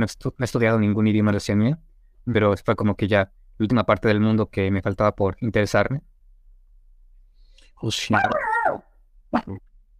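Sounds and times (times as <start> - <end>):
speech: 0.0 - 6.1, 7.8 - 9.7
dog barking: 8.1 - 8.8.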